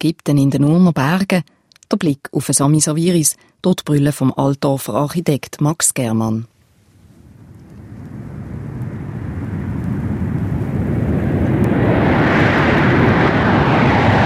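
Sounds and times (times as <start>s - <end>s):
speech: 0.0s - 6.6s
loud airplane roaring overhead: 7.1s - 14.2s.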